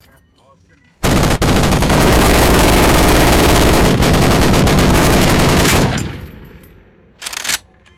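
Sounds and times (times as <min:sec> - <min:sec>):
overlapping heavy machine gun bursts: 0:01.0 - 0:06.4
gun handling: 0:06.6 - 0:07.9.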